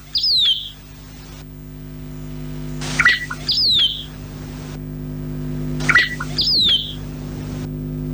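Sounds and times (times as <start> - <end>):
bird singing: 0.0 - 1.0, 2.8 - 4.2, 5.8 - 7.2
steady low hum: 0.0 - 8.1.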